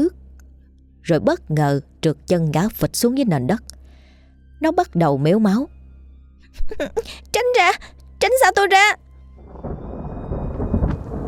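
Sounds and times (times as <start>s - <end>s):
speech: 1.1s - 3.8s, 4.6s - 5.8s, 6.5s - 9.0s
heavy rain pouring over open fields: 9.4s - 11.2s
thunder crash from a lightning strike: 9.4s - 11.2s.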